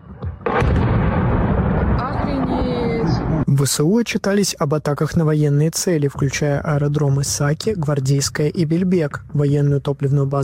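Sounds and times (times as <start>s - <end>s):
sudden loud explosive blast: 0.1s - 3.5s
speech: 3.5s - 10.4s.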